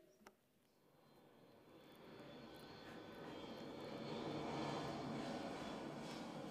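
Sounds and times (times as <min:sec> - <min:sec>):
airplane engine sound effect powering up: 0:01.7 - 0:06.5.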